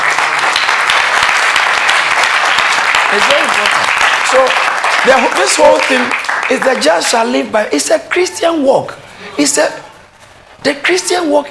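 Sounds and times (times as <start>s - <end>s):
church audience clapping during a sermon: 0.0s - 7.4s
speech: 3.1s - 9.9s, 10.6s - 11.5s.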